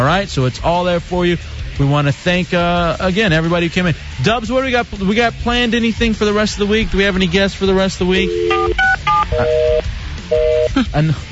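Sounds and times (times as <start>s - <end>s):
speech: 0.2s - 11.2s
telephone keypad tones: 8.2s - 10.7s.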